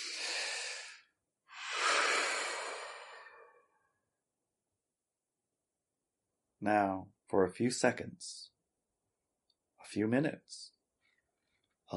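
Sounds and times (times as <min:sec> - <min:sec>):
deep breath in and out during a guided relaxation exercise: 0:00.0 - 0:04.0
speech: 0:06.6 - 0:08.5, 0:09.8 - 0:10.7.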